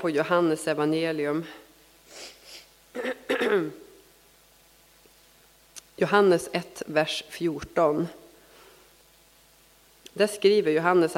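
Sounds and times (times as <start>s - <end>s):
speech: 0.0s - 2.4s, 3.0s - 3.9s, 6.0s - 8.2s, 10.2s - 11.1s
soft quick sniffs through a stuffy nose: 2.1s - 2.8s.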